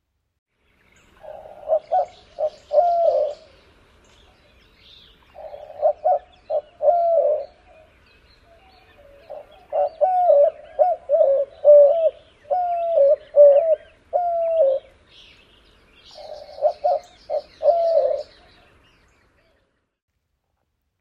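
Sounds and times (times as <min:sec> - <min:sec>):
dove cooing: 0:01.2 - 0:03.6, 0:05.2 - 0:15.0, 0:16.0 - 0:18.7.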